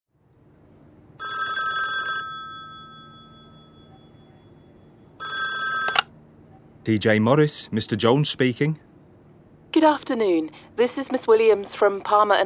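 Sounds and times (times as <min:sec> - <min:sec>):
telephone bell ringing: 0:01.2 - 0:06.1
speech: 0:06.8 - 0:08.9, 0:09.8 - 0:12.4.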